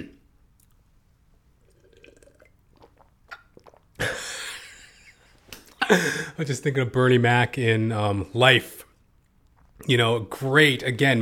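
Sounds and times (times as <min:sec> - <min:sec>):
person slurping water: 0:01.6 - 0:04.2, 0:09.5 - 0:09.9
speech: 0:05.9 - 0:08.8, 0:09.8 - 0:11.1.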